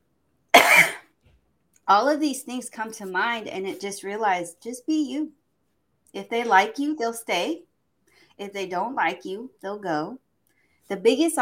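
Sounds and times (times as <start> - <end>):
person coughing: 0.5 - 1.1
speech: 1.9 - 5.4, 6.1 - 7.7, 8.4 - 10.2, 10.9 - 11.4.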